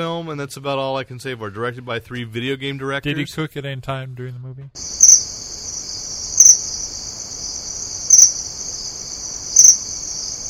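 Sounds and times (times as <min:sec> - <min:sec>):
speech: 0:00.0 - 0:05.4
crickets chirping in a continuous shimmering trill: 0:04.8 - 0:10.4.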